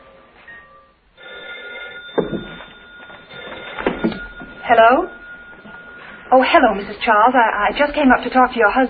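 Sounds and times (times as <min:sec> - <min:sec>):
old telephone ringing: 0:00.5 - 0:08.0
speech: 0:02.2 - 0:02.5, 0:04.7 - 0:05.2, 0:06.3 - 0:08.8.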